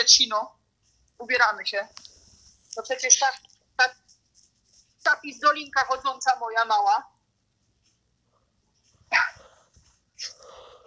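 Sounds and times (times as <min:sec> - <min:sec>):
speech: 0:00.0 - 0:00.6, 0:01.2 - 0:02.1, 0:02.8 - 0:04.0, 0:05.0 - 0:07.1, 0:09.1 - 0:09.4
small dog barking: 0:09.1 - 0:09.6.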